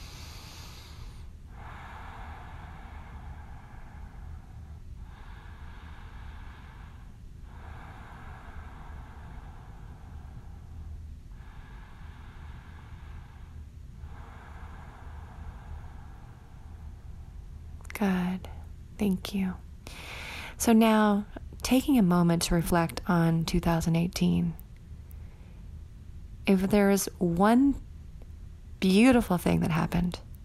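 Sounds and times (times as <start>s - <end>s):
deep rhythmic breathing in through the nose and out through the mouth: 0.0s - 19.0s, 19.8s - 24.0s
speech: 18.0s - 24.6s, 26.4s - 27.9s, 28.8s - 30.2s.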